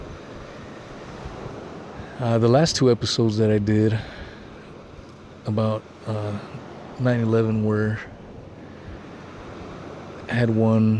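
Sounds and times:
ocean surf waves breaking on shore: 0.0s - 10.9s
wind buffeting: 0.0s - 10.9s
speech: 2.2s - 4.2s, 5.5s - 8.1s, 10.3s - 10.9s.

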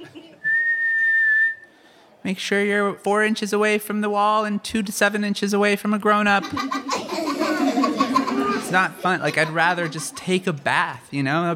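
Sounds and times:
laughter: 0.0s - 0.5s, 6.2s - 10.7s
person whistling imitating a lifeguard whistle blast: 0.5s - 1.7s
speech: 2.2s - 7.0s, 8.7s - 11.5s
murmur of voice: 6.5s - 10.3s.

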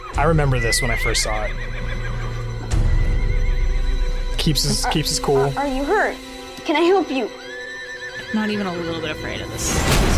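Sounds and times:
horse neighing: 0.0s - 3.8s, 7.3s - 8.8s
speech: 0.2s - 2.0s, 4.4s - 7.4s, 8.3s - 10.1s.

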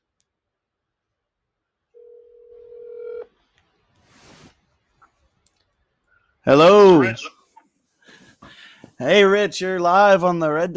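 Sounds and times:
telephone dial tone: 2.0s - 3.3s
speech: 6.4s - 7.4s, 9.0s - 10.7s.

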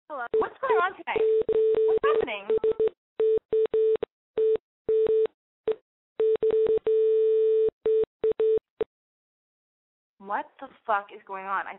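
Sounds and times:
speech: 0.2s - 2.6s, 10.4s - 11.7s
telephone line tone beeps after a call drops: 1.2s - 8.6s.

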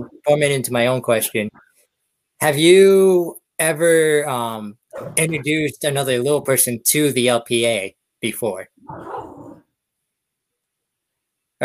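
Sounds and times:
speech: 0.3s - 1.6s, 2.4s - 9.2s
dog barking: 8.9s - 9.6s.

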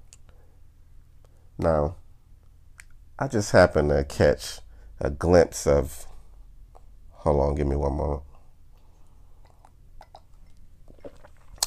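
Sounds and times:
speech: 1.6s - 2.0s, 3.2s - 6.1s, 7.2s - 8.3s
sipping wine: 9.4s - 11.6s.

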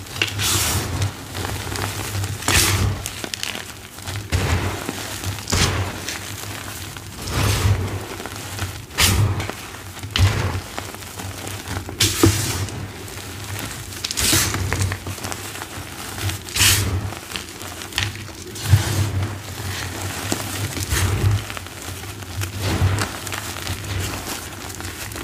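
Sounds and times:
dyed gym chalk and cornstarch crunching: 0.0s - 25.2s.

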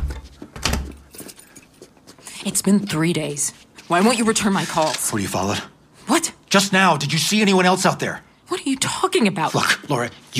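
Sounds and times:
door pushed shut with dull low thud: 0.0s - 1.0s
speech: 2.4s - 10.3s.

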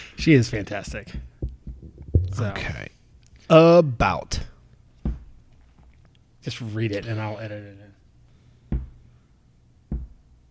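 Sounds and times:
speech: 0.2s - 1.3s, 2.4s - 4.5s, 6.4s - 8.0s
dull low thuds against a table or chair: 0.7s - 2.8s, 5.0s - 5.4s, 8.7s - 9.0s, 9.9s - 10.2s.

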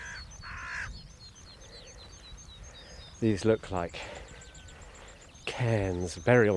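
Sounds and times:
carrion crow cawing on a hillside of stony spoil heaps: 0.0s - 1.0s
small birds chirping: 0.0s - 6.5s
speech: 3.2s - 4.2s, 5.6s - 6.5s.

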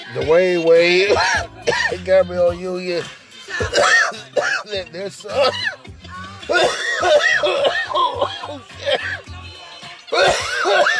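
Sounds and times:
speech: 0.1s - 4.0s, 4.7s - 5.8s, 6.5s - 9.2s, 10.1s - 10.9s
loud coughing fit of harsh rasping coughs: 1.0s - 2.2s, 3.5s - 9.3s, 10.1s - 10.9s.

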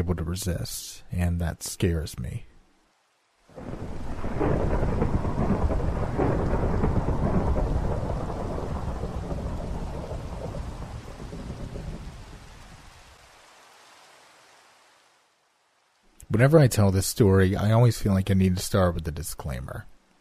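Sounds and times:
speech: 0.0s - 2.5s, 16.4s - 19.9s
heavy rain: 2.7s - 20.2s
rolling thunder: 3.5s - 12.9s.

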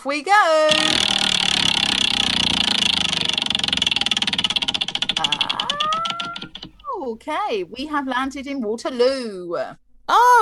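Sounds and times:
speech: 0.0s - 1.8s, 7.1s - 10.3s
spinning prize wheel clicking: 0.7s - 8.6s.

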